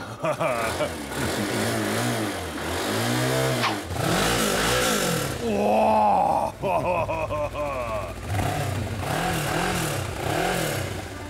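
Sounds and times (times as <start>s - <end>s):
laughter: 0.0s - 1.2s, 5.5s - 8.2s
motorcycle engine revving: 0.0s - 11.2s.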